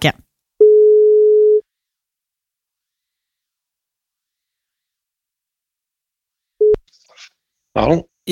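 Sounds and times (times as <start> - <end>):
telephone ringback tone on an outgoing call: 0.6 - 1.6
speech: 7.8 - 8.2.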